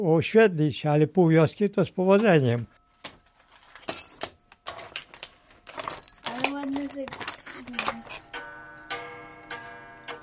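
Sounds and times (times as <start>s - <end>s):
speech: 0.0s - 2.8s
clock ticking with a metallic ring: 7.9s - 10.2s.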